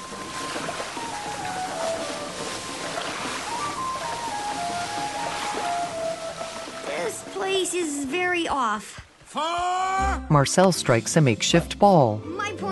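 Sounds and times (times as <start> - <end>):
fountain water jets shooting up and spraying: 0.0 - 8.0
speech: 7.7 - 12.7.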